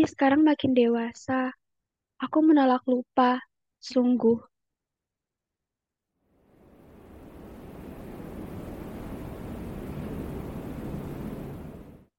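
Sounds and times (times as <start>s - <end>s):
speech: 0.0s - 1.6s, 2.2s - 4.5s
wind blowing on a cold windy night at Banyu Dono: 6.4s - 12.1s.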